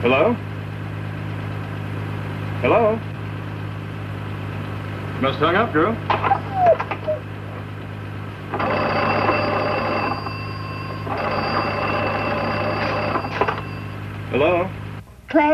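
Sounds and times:
speech: 0.0 - 0.5, 2.6 - 3.2, 5.2 - 7.0, 14.3 - 15.5
steady low hum: 0.4 - 15.0
old telephone bell ringing: 8.5 - 14.1.

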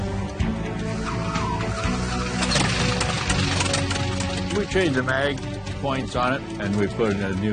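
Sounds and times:
snowplane propeller engine roaring at full throttle: 0.7 - 6.1
speech: 4.7 - 7.5.

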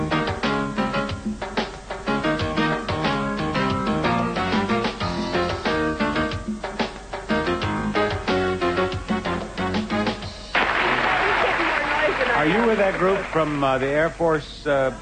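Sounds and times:
upbeat music: 0.0 - 13.8
large television game show studio audience cheering and applause: 10.6 - 13.9
speech: 12.8 - 14.9.

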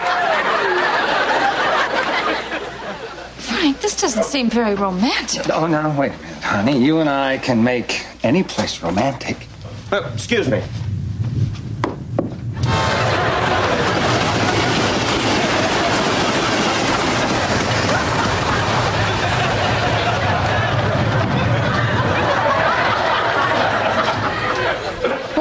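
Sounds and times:
laughter: 0.0 - 4.5, 12.6 - 25.3
speech: 3.7 - 10.8
train roaring past: 10.4 - 25.3
rattling clattering train wheels: 12.7 - 24.8.

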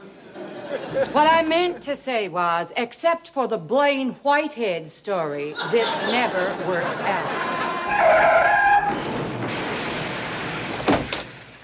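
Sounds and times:
laughter: 0.0 - 2.0, 5.5 - 8.2
speech: 0.7 - 9.1
car tires skidding in a crash: 7.3 - 11.6.

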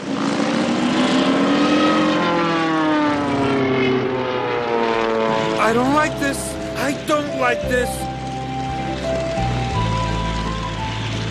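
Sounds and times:
loud propeller airplane engine revving and droning: 0.0 - 11.2
speech: 5.7 - 8.1.

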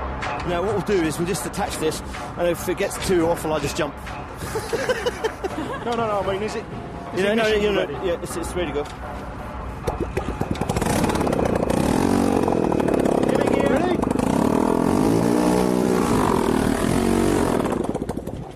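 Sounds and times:
speech: 0.5 - 9.2
laughter: 4.4 - 6.1
small engine running with a rattling buzzing drone: 10.2 - 18.5.

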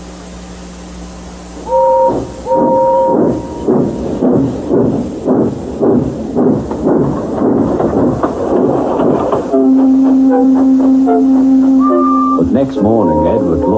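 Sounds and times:
sustained droning tone: 0.0 - 13.7
steam locomotive rhythmic chuffing: 1.4 - 13.7
tonal squeals: 1.6 - 4.6, 9.5 - 13.7
steam locomotive clanking past: 1.6 - 13.7.

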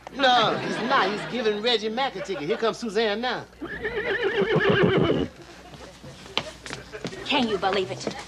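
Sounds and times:
speech: 0.1 - 5.3, 7.3 - 8.2
laughter: 0.2 - 3.1, 5.2 - 7.8
carriage horse whinnying: 3.6 - 5.4.

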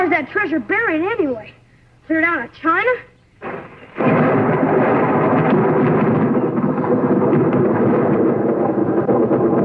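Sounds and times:
speech: 0.2 - 3.1
deep rolling thunder of an approaching storm: 3.4 - 9.6.

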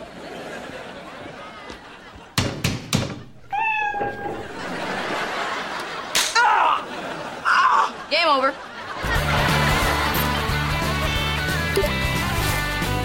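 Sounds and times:
laughter: 0.0 - 2.4, 4.2 - 12.9
sharp slapping knocks: 2.4 - 3.2
cat meowing inside a wall: 3.5 - 4.2
speech: 8.3 - 8.6.

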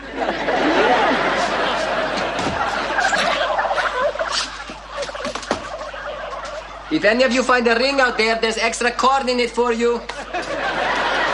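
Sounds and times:
laughter: 0.0 - 7.7, 9.8 - 11.3
several turkeys gobbling: 0.0 - 11.3
speech: 6.9 - 10.2.

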